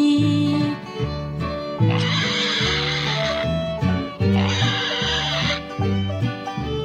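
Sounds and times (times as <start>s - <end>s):
bouncy song about animals: 0.0s - 6.8s
pig oinking: 1.8s - 5.6s.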